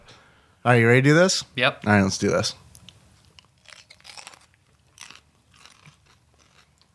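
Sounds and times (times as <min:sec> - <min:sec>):
speech: 0:00.6 - 0:02.6
brittle crunchy food being bitten and chewed: 0:01.8 - 0:06.9.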